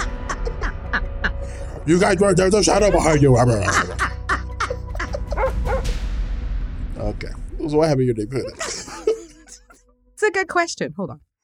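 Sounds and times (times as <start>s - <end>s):
laughter: 0.0s - 5.6s, 8.2s - 9.8s
low rumbling background: 0.0s - 10.2s
speech: 1.8s - 4.1s, 7.2s - 8.6s, 10.3s - 11.3s
dog barking: 5.3s - 5.9s.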